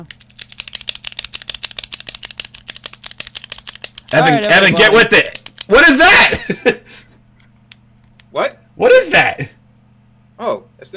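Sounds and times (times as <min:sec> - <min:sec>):
speech: 0:00.0 - 0:00.2, 0:04.1 - 0:06.8, 0:08.4 - 0:09.5
pen clicking: 0:00.0 - 0:05.8
faint low electrical hum: 0:00.0 - 0:10.9
laughter: 0:05.8 - 0:07.6.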